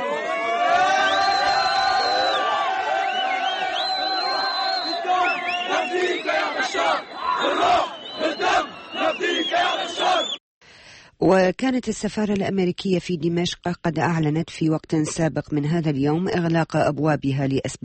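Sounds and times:
large crowd of protesters chanting and shouting in unison: 0.0s - 10.4s
speech: 11.2s - 17.8s.

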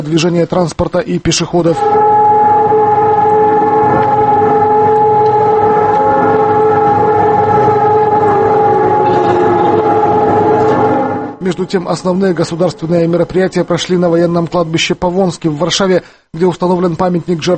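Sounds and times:
speech: 0.0s - 2.1s, 11.5s - 17.5s
sirens wailing across many cities in Poland: 1.8s - 14.6s.

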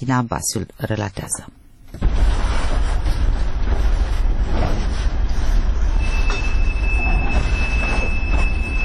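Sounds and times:
speech: 0.0s - 2.3s
train rumbling through the railway depot in Chișinău: 1.9s - 8.8s
thin sustained metallic train wheel squeal: 5.8s - 8.8s.

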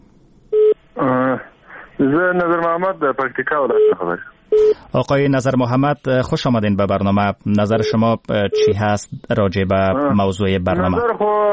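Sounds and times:
buzzy tonal telephone connection sound: 0.5s - 0.8s, 3.6s - 4.9s
speech: 2.0s - 11.5s.

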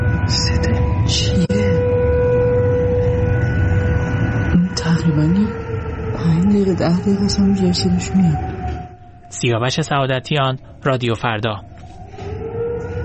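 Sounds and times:
air raid warning siren wailing in Tehran Iran: 0.0s - 13.0s
speech: 1.1s - 1.6s, 6.8s - 8.5s, 9.4s - 11.7s.

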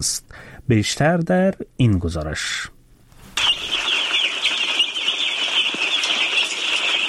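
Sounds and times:
speech: 0.0s - 2.8s
chorus of many day-old chicks peeping at a poultry farm: 3.4s - 7.0s.

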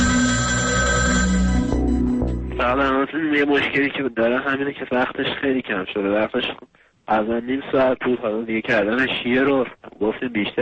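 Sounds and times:
telephone ringing for an incoming caller: 0.0s - 2.9s
speech: 2.7s - 10.6s.

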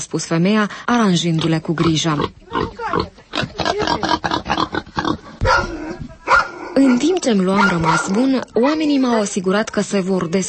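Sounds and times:
speech: 0.0s - 4.1s, 6.8s - 10.4s
piglet grunting and snorting: 1.4s - 6.0s.

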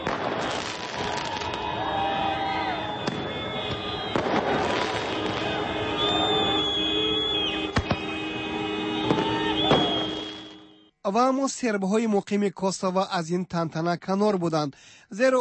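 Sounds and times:
fireworks bangs and crackles: 0.0s - 10.6s
thousands of Albanians celebrating in the streets: 0.0s - 10.7s
long car horn blasts: 2.9s - 10.9s
speech: 11.1s - 15.3s.

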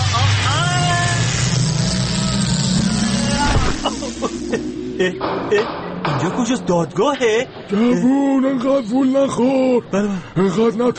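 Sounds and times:
loud steady low rumble: 0.0s - 7.9s
gliding electronic tones of a sci-fi time-travel effect: 0.2s - 9.1s
speech: 5.0s - 10.9s.

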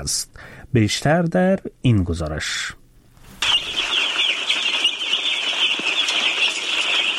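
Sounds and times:
speech: 0.0s - 2.8s
day-old chicken chicks peeping on a farm in Totamdara village, Parwan province, Afghanistan: 3.4s - 7.1s.

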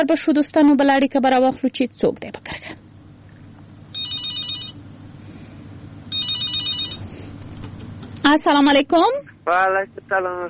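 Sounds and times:
speech: 0.0s - 2.8s, 8.2s - 10.4s
low steady hum: 0.0s - 10.4s
telephone ringing for an incoming call: 3.9s - 4.8s, 6.1s - 7.0s.

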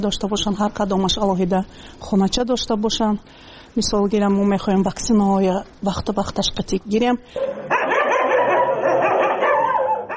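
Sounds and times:
speech: 0.0s - 7.7s
dogs barking and yipping at an animal shelter: 7.4s - 10.1s.

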